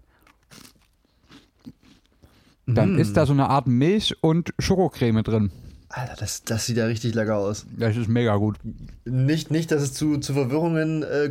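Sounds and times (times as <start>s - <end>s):
chewing wafer: 0.0s - 2.7s
person biting into a crunchy wafer: 0.0s - 2.7s
speech: 2.7s - 11.2s.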